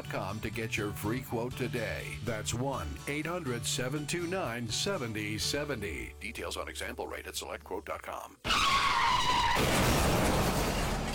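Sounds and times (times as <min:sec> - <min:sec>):
speech: 0:00.1 - 0:10.3
car tires skidding in a crash: 0:08.5 - 0:11.1.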